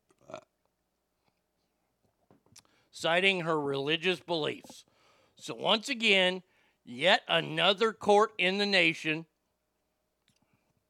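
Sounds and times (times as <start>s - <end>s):
short throaty belch: 0.2s - 0.6s
speech: 3.0s - 9.3s.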